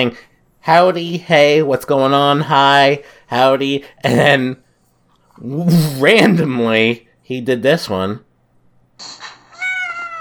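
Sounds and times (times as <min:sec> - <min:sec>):
speech: 0:00.0 - 0:04.6, 0:05.4 - 0:08.2
cat meowing: 0:09.5 - 0:10.2.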